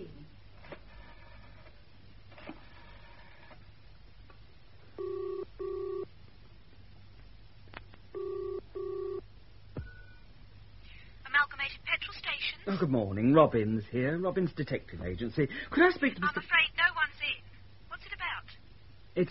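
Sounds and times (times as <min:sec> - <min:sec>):
quiet hum: 0:00.0 - 0:19.3
telephone dialing tones: 0:05.0 - 0:06.1, 0:08.2 - 0:09.2
speech: 0:12.7 - 0:16.7, 0:19.2 - 0:19.3.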